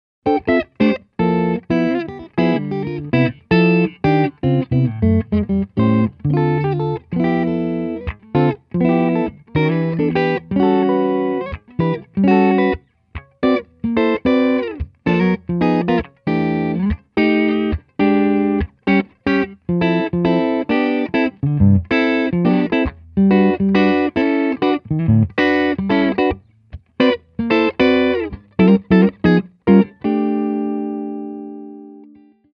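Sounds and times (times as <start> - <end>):
hollow T neck guitar pickups: 0.2 - 32.2.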